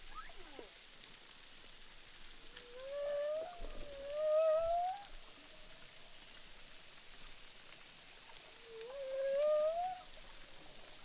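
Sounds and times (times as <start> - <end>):
faint underwater hiss: 0.0 - 11.0
humpback whale song at Boucan Canot, Reunion, recorded with a DPA hydrophone: 2.6 - 5.1, 8.7 - 10.1.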